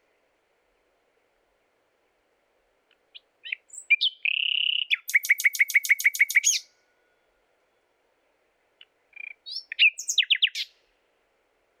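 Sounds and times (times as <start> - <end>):
common nightingale Luscinia megarhynchos singing: 3.4 - 6.7, 9.2 - 10.7.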